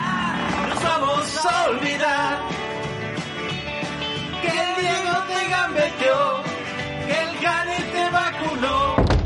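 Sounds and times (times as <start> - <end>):
guitar playing sustained chords and melodic lines: 0.0 - 9.0
speech: 1.4 - 2.6.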